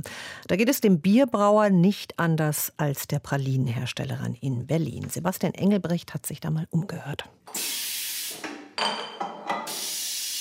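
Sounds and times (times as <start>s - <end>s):
speech: 0.0s - 7.9s
stainless steel beer bottling machine hissing while filling bottles and pressing crown caps: 7.5s - 8.5s, 9.5s - 10.3s.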